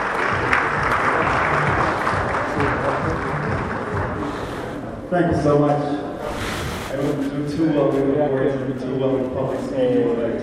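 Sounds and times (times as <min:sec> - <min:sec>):
large crowd applauding at an award ceremony: 0:00.0 - 0:04.8
speech: 0:05.1 - 0:06.0, 0:07.0 - 0:10.4.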